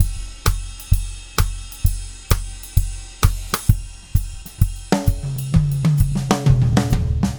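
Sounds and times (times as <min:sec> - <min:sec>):
pronounced acoustic drums: 0:00.0 - 0:07.3.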